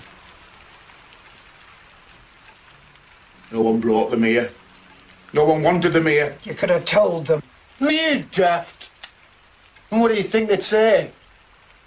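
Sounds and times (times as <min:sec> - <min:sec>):
steady rain falling on a surface: 0:00.0 - 0:11.8
speech: 0:03.5 - 0:04.6, 0:05.3 - 0:08.8, 0:09.9 - 0:11.2.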